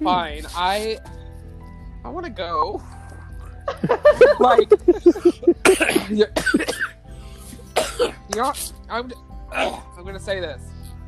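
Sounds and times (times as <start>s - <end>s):
speech: 0.0s - 1.2s, 2.0s - 3.0s, 3.7s - 7.0s, 8.0s - 10.8s
laughter: 3.2s - 6.7s
person coughing: 4.4s - 6.9s, 7.8s - 8.7s
throat clearing: 4.9s - 6.9s, 7.8s - 8.7s, 9.6s - 9.9s.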